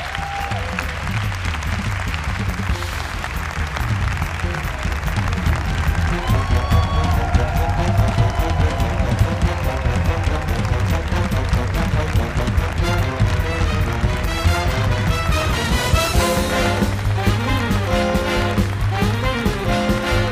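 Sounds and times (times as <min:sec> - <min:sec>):
scattered cheers and whistles from crowd: 0:00.0 - 0:01.0, 0:05.7 - 0:09.4
large crowd clapping: 0:00.0 - 0:20.2.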